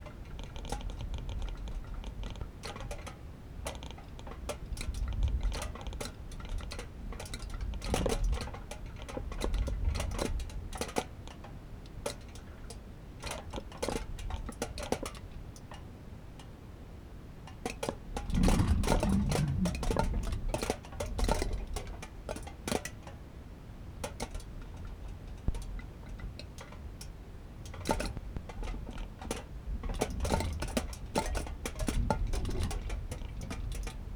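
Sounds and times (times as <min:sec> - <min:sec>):
wind on aluminium in Curacao: 0:00.0 - 0:34.1.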